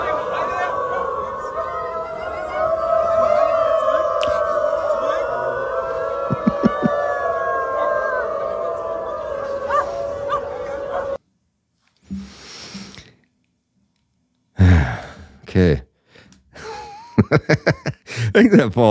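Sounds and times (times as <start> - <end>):
people imitating dogs howling: 0.0 - 11.2
laughter: 3.4 - 11.2, 16.6 - 18.7
speech: 15.6 - 15.8, 18.4 - 18.8.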